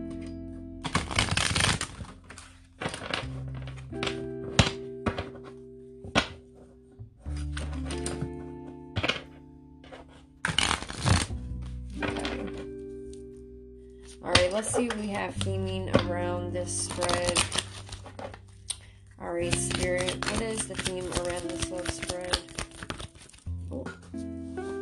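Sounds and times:
deck of tarot cards being shuffled: 0.0 - 13.2, 14.1 - 24.8
speech: 14.6 - 17.6, 19.4 - 22.4.

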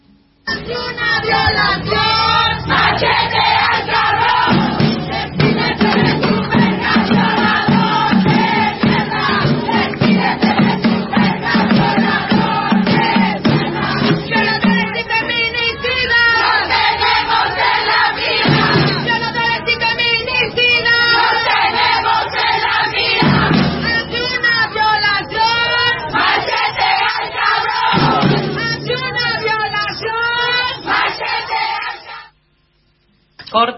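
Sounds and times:
large crowd chanting a protest song in unison: 0.5 - 32.3
speech: 0.7 - 3.2.

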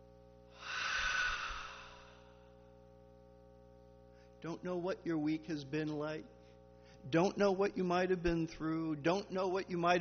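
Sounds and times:
people in a worship service taking a deep breath together: 0.6 - 2.6
speech: 4.4 - 6.4, 7.0 - 9.9.

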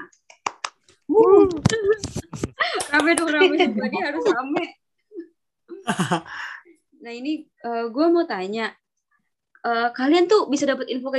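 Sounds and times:
few people clapping in scattered uneven bursts: 0.4 - 0.8
speech: 1.1 - 4.8, 5.8 - 8.8, 9.6 - 11.1
laughter: 5.8 - 6.4.

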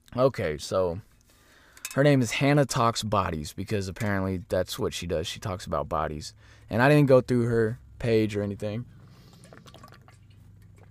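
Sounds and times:
low steady hum: 0.0 - 10.8
speech: 0.2 - 1.1, 1.9 - 9.0
person sipping and swallowing water from a glass: 8.9 - 10.8.

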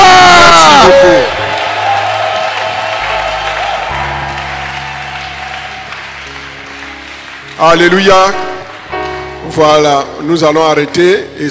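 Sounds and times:
church audience cheering with whoops and shouted voices: 0.0 - 6.7
church audience clapping: 0.1 - 9.9
speech: 7.6 - 8.5, 9.5 - 11.4.

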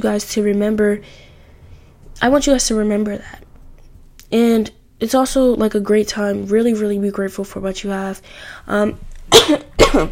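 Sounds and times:
speech: 0.0 - 1.3, 2.2 - 3.4, 4.3 - 10.1
harsh coughs: 9.3 - 10.1.

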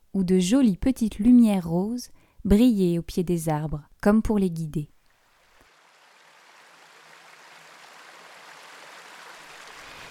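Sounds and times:
speech: 0.2 - 4.9
flowing river water: 5.1 - 10.1.

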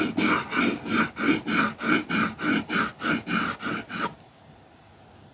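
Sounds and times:
paper being rubbed: 0.0 - 4.2
rapid scratchy colouring pencil strokes: 0.0 - 4.2.

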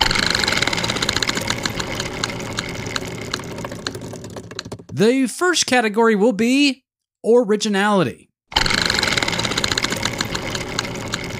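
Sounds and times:
continuous rushing mechanical noise: 0.0 - 4.9, 8.6 - 11.3
spinning prize wheel ticking against its pointer: 0.0 - 5.0, 8.6 - 11.3
speech: 5.0 - 8.6.

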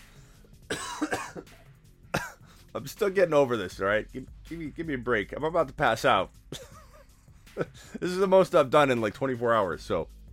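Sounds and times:
person coughing after choking on a breath: 0.7 - 2.6
speech: 2.8 - 6.6, 7.6 - 10.2.

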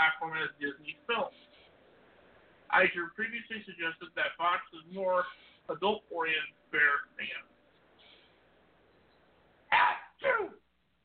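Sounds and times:
speech: 0.0 - 1.5, 2.7 - 7.5, 9.7 - 10.6
loud sneeze: 9.7 - 10.6.

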